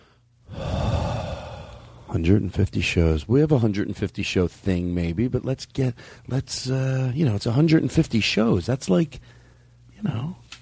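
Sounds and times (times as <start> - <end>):
deep breath: 0.0 - 2.1, 6.0 - 6.3, 9.2 - 9.8
speech: 2.1 - 9.4, 10.0 - 10.4.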